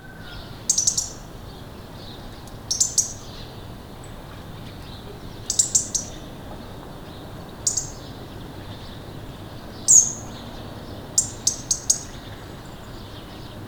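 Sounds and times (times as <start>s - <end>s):
European robin calls: 0.2s - 3.7s, 4.9s - 13.5s.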